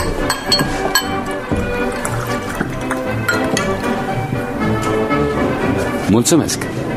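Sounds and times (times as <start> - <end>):
glasses clinking: 0.0 - 4.7
drink being poured: 0.0 - 5.2
speech: 6.1 - 6.8.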